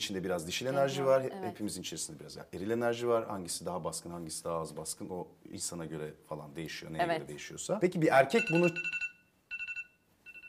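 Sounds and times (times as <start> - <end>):
speech: 0.0 - 9.0
phone alarm beeping: 8.3 - 10.4.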